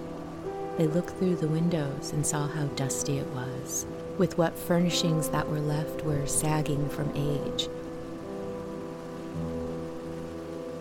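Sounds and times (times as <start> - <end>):
steady rain: 0.0 - 10.8
speech: 0.8 - 7.8.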